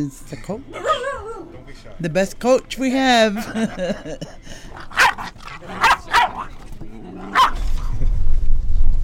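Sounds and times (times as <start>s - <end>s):
speech: 0.0s - 1.0s, 1.7s - 5.1s
laughter: 3.2s - 6.0s
dog barking: 4.9s - 6.5s, 7.3s - 7.7s
low rumbling noise: 6.5s - 9.0s.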